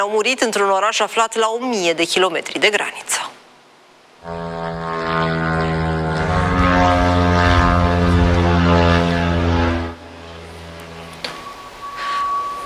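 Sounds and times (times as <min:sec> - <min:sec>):
speech: 0:00.0 - 0:03.4, 0:04.2 - 0:04.5
faint tone: 0:04.2 - 0:12.6
propeller engine of kamikaze attack drone buzzing overhead: 0:04.2 - 0:12.6.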